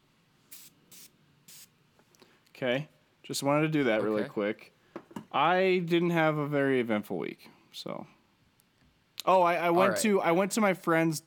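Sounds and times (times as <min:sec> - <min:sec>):
citrus aerosol air freshener spraying: 0:00.5 - 0:01.7
speech: 0:02.6 - 0:08.2, 0:09.2 - 0:11.2.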